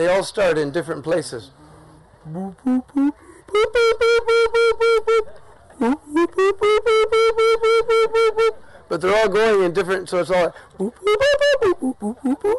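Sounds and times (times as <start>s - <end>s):
speech: 0.0s - 1.6s, 2.2s - 12.5s
human voice imitating dawn call of a large bird with whoops and honking notes: 2.2s - 8.5s, 10.7s - 12.5s.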